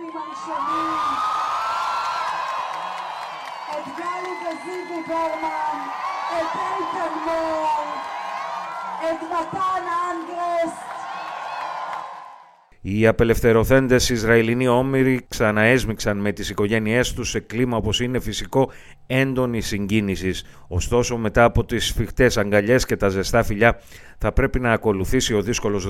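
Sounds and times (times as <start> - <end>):
scattered high yells: 0.0 - 12.6
large crowd cheering and whooping in celebration at news of hostage release: 0.0 - 12.7
speech: 0.2 - 1.3, 3.8 - 8.0, 9.0 - 10.8, 12.8 - 25.8.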